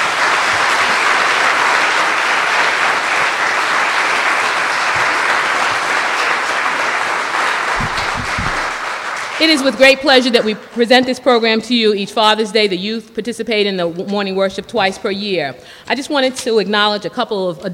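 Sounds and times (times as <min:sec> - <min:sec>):
large audience applauding: 0:00.0 - 0:10.8
low thumps: 0:07.8 - 0:08.8
speech: 0:09.4 - 0:17.7.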